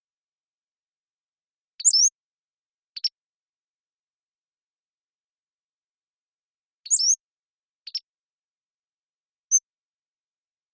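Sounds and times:
Pacific-slope flycatcher singing: 1.8 - 2.2, 6.9 - 7.2, 7.9 - 8.1.

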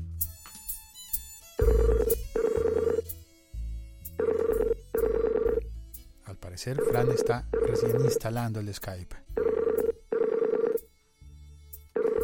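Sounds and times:
electronic ringback tone of an outgoing call: 1.6 - 3.0, 4.2 - 5.7, 6.8 - 8.3, 9.4 - 10.9, 12.0 - 12.2
speech: 6.6 - 9.2.

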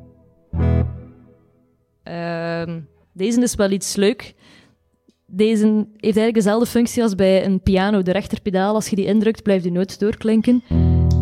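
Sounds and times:
electric guitar chord through light overdrive, looper and reverb with echo: 0.0 - 1.6, 10.7 - 11.2
speech: 2.1 - 4.6, 5.3 - 10.9.

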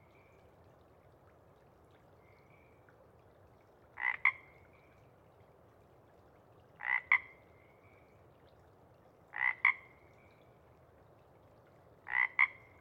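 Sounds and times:
Pacific chorus frog ribbit call before dawn: 9.4 - 9.8, 12.1 - 12.6.

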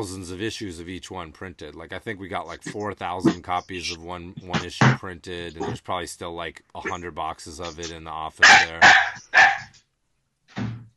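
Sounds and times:
speech: 0.0 - 9.5
dog barking: 8.4 - 9.7.

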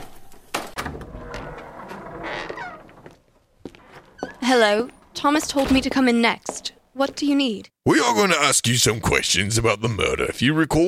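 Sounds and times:
door swinging open with a creaky squeal: 0.5 - 6.1
speech: 4.5 - 10.8.

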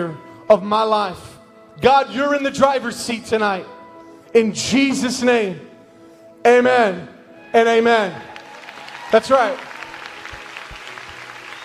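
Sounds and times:
speech: 0.0 - 5.7, 6.4 - 8.3, 9.1 - 9.7
audience clapping and applauding: 8.2 - 11.6.

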